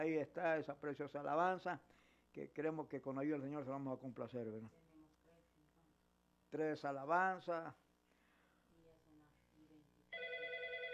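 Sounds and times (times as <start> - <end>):
speech: 0.0 - 4.8, 6.5 - 7.8
telephone ringing with a steady electronic tone: 10.1 - 10.9.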